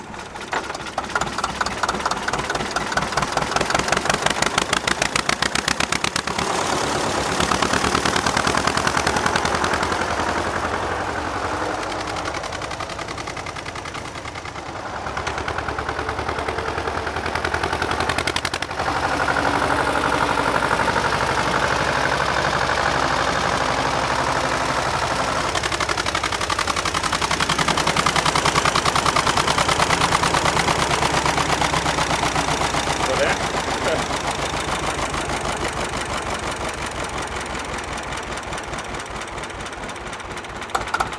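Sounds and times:
loud tractor engine idling: 0.0s - 41.1s.

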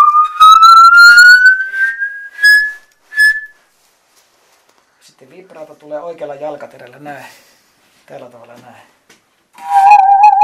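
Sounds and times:
musical saw played by bending its blade, pitch rising: 0.0s - 2.6s, 9.6s - 10.4s
speech: 5.8s - 7.5s, 8.1s - 9.0s.

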